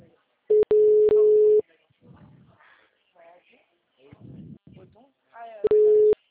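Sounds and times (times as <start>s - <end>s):
telephone busy signal on a call: 0.5s - 1.6s, 5.7s - 6.2s
recorded voice speaking on a telephone call: 0.8s - 2.8s, 4.1s - 6.2s.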